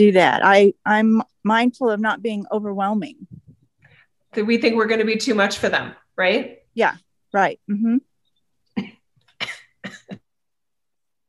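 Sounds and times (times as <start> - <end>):
speech: 0.0 - 3.4, 4.4 - 8.1
harsh coughs from a person with a tickly throat during allergy season: 8.8 - 10.2.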